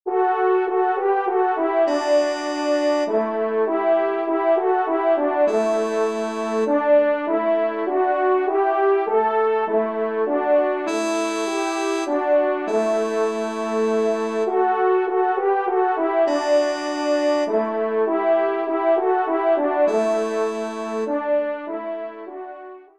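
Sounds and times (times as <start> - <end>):
minuet in C major: 0.7 - 21.8.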